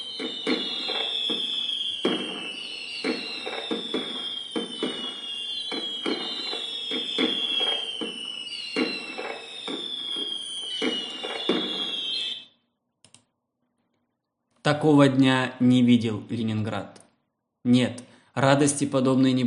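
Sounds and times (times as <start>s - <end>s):
festive salute fireworks bursts over the Neva in Leningrad: 0.0s - 12.4s
high falling firework whistles: 0.0s - 12.6s
speech: 0.2s - 0.6s, 14.7s - 17.0s, 17.6s - 19.4s.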